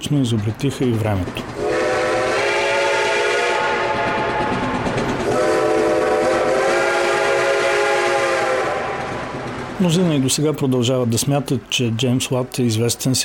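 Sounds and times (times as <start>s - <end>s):
speech: 0.0s - 1.6s, 9.8s - 13.2s
rumble of a train pulling away: 0.0s - 13.2s
train whistle: 1.6s - 9.5s.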